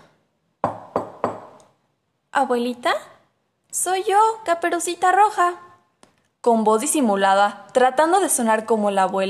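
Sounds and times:
knocking on a wooden door: 0.6s - 1.6s
speech: 2.4s - 5.7s, 6.4s - 9.2s.

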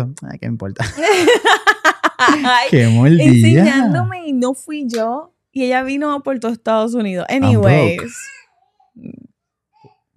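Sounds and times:
laughter: 0.0s - 4.1s, 7.4s - 8.2s
speech: 0.0s - 8.4s
baby babbling and shouting in a crib: 2.3s - 4.1s, 7.4s - 9.0s.

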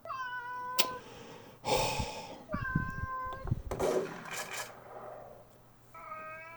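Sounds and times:
cat meowing while lifted onto a table: 0.0s - 3.8s, 5.9s - 6.5s
soft rustling bumps: 2.3s - 6.1s.

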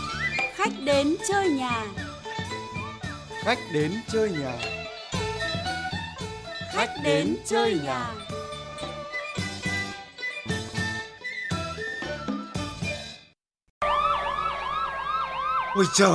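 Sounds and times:
melodic music: 0.0s - 12.8s
speech: 0.6s - 2.1s, 3.4s - 4.8s, 6.8s - 8.4s, 15.8s - 16.1s
fire truck siren wailing in rising and falling sweeps: 13.8s - 16.1s.

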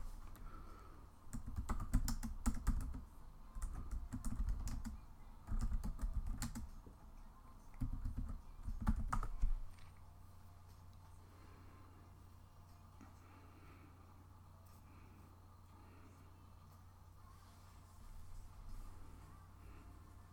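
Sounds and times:
low hum: 0.0s - 20.3s
keyboard typing: 1.3s - 6.8s, 7.7s - 10.0s.

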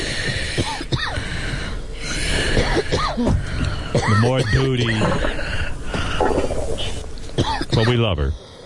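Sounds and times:
wheezy labored breathing: 0.0s - 4.0s, 5.0s - 7.2s
woman coughing and clearing her throat: 2.6s - 5.3s, 7.4s - 8.1s
speech: 4.1s - 5.5s, 7.8s - 8.5s.

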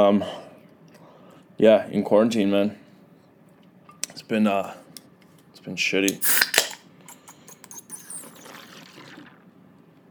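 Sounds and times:
speech: 0.0s - 0.4s, 1.6s - 2.8s, 4.2s - 4.8s, 5.6s - 6.4s
Guinness beer pouring into a glass: 7.7s - 9.5s.

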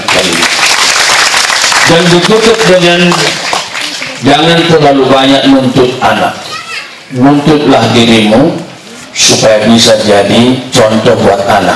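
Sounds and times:
audience applause: 0.0s - 4.3s
speech: 1.9s - 3.4s, 4.2s - 6.4s, 7.1s - 8.6s, 9.2s - 11.7s.

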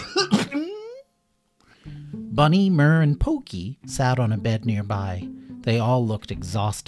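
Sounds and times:
person imitating a character coughing hard: 0.0s - 1.0s
speech: 2.4s - 6.8s.

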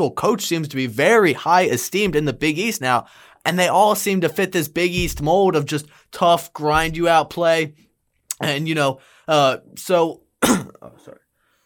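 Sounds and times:
speech: 0.0s - 11.2s
person clearing throat: 10.4s - 11.2s.

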